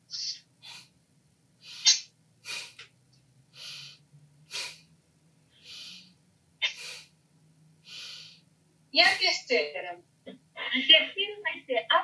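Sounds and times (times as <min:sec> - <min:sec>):
faint low hum: 0:00.0 - 0:12.0
forceful breaths during a breathing exercise: 0:00.1 - 0:00.9, 0:01.6 - 0:02.8, 0:03.5 - 0:04.9, 0:05.6 - 0:07.1, 0:07.8 - 0:08.4
speech: 0:09.0 - 0:10.1, 0:10.8 - 0:12.0.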